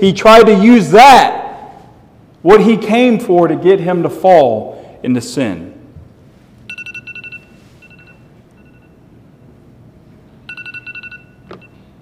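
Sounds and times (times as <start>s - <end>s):
speech: 0.0s - 1.4s, 2.4s - 5.7s
low hum: 0.0s - 12.0s
electronic timer alarm beeping: 6.7s - 9.2s, 10.4s - 12.0s.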